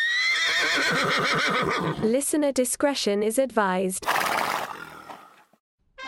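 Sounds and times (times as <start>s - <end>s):
horse whinnying: 0.0s - 2.1s, 4.0s - 5.5s
speech: 0.6s - 4.3s.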